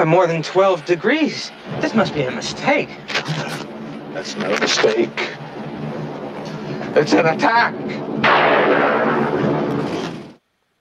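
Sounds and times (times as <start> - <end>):
speech: 0.0 - 3.6, 4.2 - 5.4, 6.9 - 9.2
thunder crack rolling into a roaring rumble: 0.0 - 10.4.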